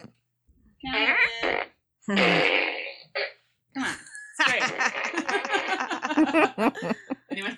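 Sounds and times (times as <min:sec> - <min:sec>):
toy fart gun firing fart noises: 0:00.9 - 0:03.4
laughter: 0:03.9 - 0:07.5.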